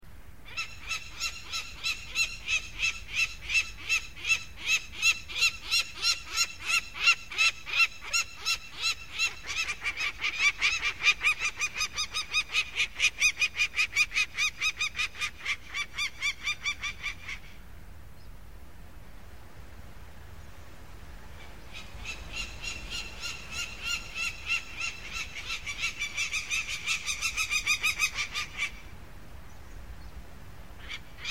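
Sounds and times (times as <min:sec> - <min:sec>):
peregrine falcon calls: 0:00.5 - 0:17.6, 0:21.4 - 0:28.9.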